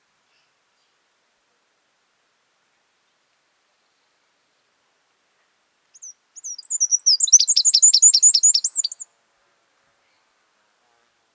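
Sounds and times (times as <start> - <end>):
Northern wren song: 6.0 - 9.0.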